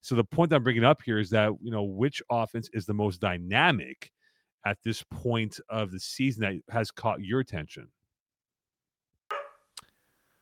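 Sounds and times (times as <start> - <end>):
speech: 0.0 - 8.0
dog barking: 9.3 - 9.7.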